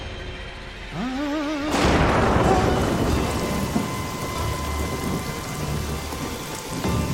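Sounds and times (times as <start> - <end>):
heavy rain pouring: 0.9 - 7.1
deep thunder rumbles: 1.7 - 7.1.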